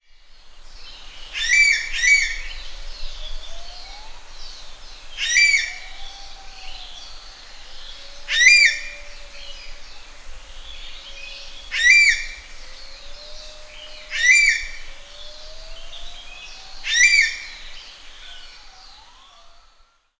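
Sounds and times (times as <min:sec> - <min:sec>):
common green magpie Cissa chinensis calling: 0:01.3 - 0:02.5, 0:05.2 - 0:09.3, 0:11.6 - 0:12.9, 0:14.1 - 0:14.9, 0:15.7 - 0:19.8.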